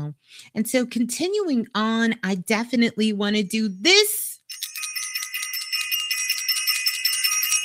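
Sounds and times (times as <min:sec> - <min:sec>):
speech: 0:00.1 - 0:04.3
high bright bell ringing: 0:04.5 - 0:07.6.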